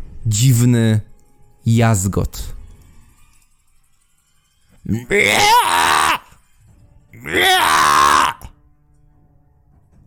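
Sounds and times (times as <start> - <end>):
speech: 0.3 - 2.6, 4.8 - 5.7
loud harsh eerie shrill wavering screeches: 4.9 - 6.4, 7.2 - 8.5.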